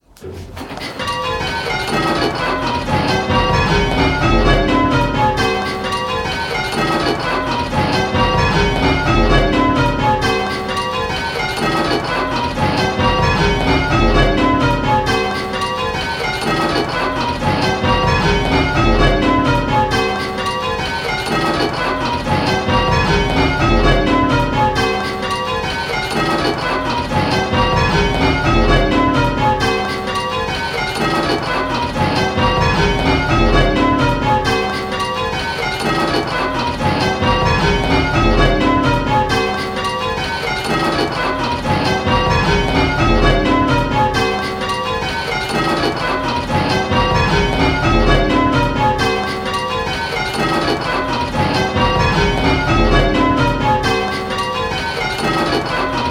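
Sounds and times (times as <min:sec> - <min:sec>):
bells ringing rounds: 0:00.8 - 0:56.0.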